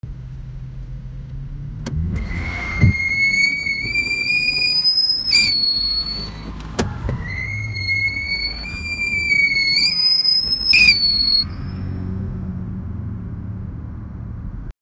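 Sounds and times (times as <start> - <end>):
car tyres screeching: 1.8 - 13.2.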